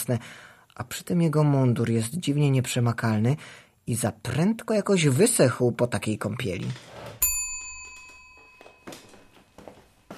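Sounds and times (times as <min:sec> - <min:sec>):
speech: 0:00.0 - 0:07.1
small bell struck to summon a servant: 0:07.2 - 0:09.4.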